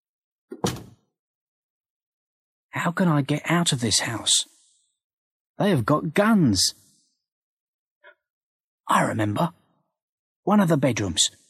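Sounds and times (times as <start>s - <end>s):
door being shut inside a house: 0.5s - 1.0s
speech: 2.8s - 4.6s, 5.6s - 6.8s, 8.9s - 9.6s, 10.4s - 11.4s.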